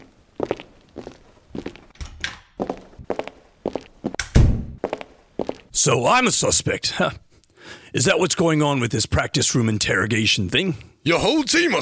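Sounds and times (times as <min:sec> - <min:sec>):
footsteps of three people walking into a practice room: 0:00.0 - 0:05.8
speech: 0:05.8 - 0:07.2, 0:07.9 - 0:11.8.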